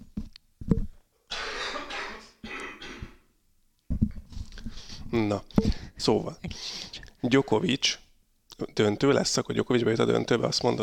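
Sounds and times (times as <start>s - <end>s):
person coughing harshly: 1.3s - 3.2s
speech: 5.1s - 8.0s, 8.6s - 10.8s.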